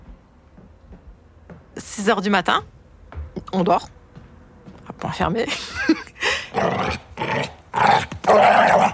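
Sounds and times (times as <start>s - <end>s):
speech: 2.0s - 2.8s, 3.5s - 3.9s, 5.0s - 7.5s
dog barking and growling behind a door: 6.6s - 8.9s.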